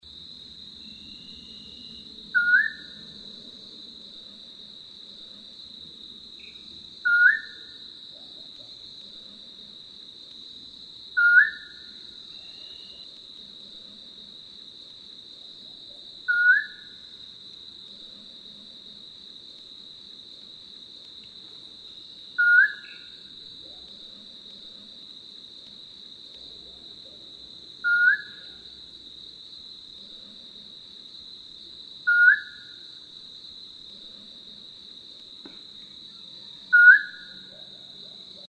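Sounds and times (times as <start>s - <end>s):
Mountain scops owl calling: 7.1s - 7.6s, 11.2s - 11.7s, 16.3s - 16.8s, 22.4s - 23.1s, 27.8s - 28.4s, 32.1s - 32.7s, 36.7s - 37.3s.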